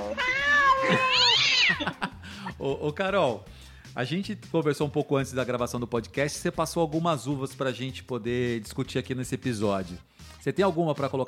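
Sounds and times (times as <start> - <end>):
cats meowing and wailing: 0.0 - 2.0
laughter: 0.4 - 2.6
speech: 2.6 - 11.2.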